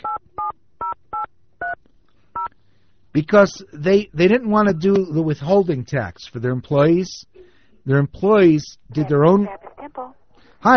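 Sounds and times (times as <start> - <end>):
touch-tone beeps of a telephone number being dialed: 0.0 - 1.8
speech: 3.2 - 9.6, 10.6 - 10.7.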